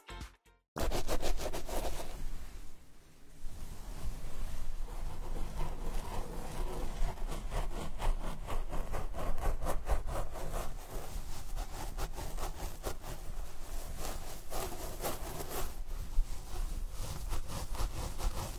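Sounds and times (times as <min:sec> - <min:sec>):
scalp massage: 0:00.9 - 0:18.5
hair being combed: 0:03.7 - 0:18.5.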